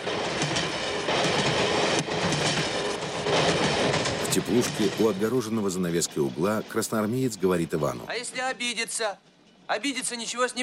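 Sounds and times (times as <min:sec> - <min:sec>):
train wheels clattering over rails and switches: 0:00.0 - 0:08.1
speech: 0:04.4 - 0:10.6.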